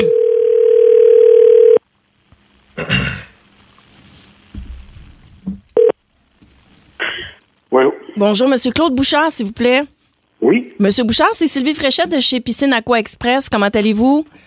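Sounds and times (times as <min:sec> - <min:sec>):
telephone dial tone: 0:00.0 - 0:01.8
speech: 0:08.2 - 0:14.4.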